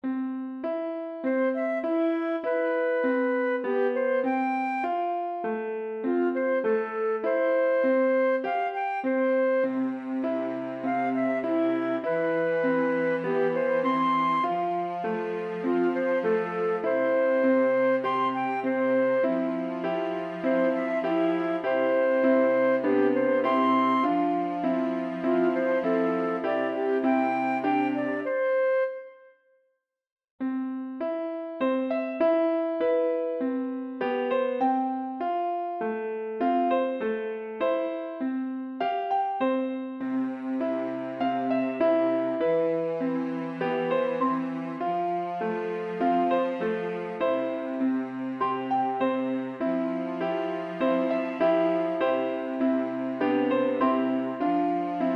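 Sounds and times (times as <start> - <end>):
piano: 0.0 - 29.4, 30.4 - 55.1
soothing flute: 1.2 - 29.6, 40.0 - 55.1.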